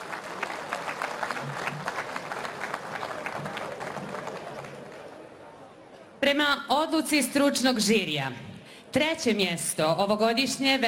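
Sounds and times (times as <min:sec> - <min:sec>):
audience applause at a traditional ojkača folk singing evening: 0:00.0 - 0:05.5
speech: 0:06.3 - 0:10.8.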